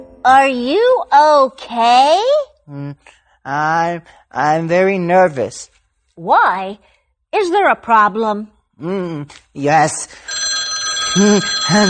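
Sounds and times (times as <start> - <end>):
speech: 0.0 - 10.4, 11.1 - 11.8
telephone ringing in warbling electronic bursts: 10.3 - 11.8.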